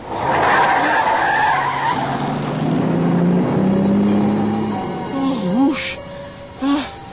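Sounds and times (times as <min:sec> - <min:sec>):
big truck roaring past on a highway: 0:00.0 - 0:05.4
tires screeching in a long loud skid on a highway: 0:00.0 - 0:05.4.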